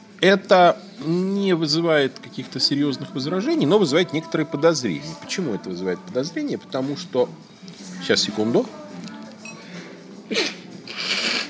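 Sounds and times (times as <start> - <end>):
faint murmur: 0.0 - 11.4
speech: 0.2 - 8.8
single sharp sneeze: 10.3 - 11.4.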